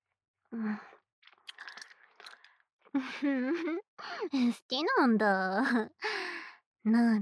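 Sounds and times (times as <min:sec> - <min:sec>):
speech: 0:00.5 - 0:01.0, 0:03.0 - 0:06.1, 0:06.8 - 0:07.2
wet gum chewing: 0:01.2 - 0:02.5.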